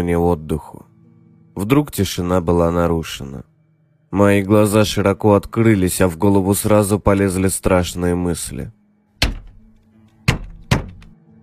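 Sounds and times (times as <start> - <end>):
speech: 0.0 - 0.8, 1.6 - 3.5, 4.1 - 8.8
fist thumping on house window glass: 9.2 - 9.6, 10.3 - 11.2.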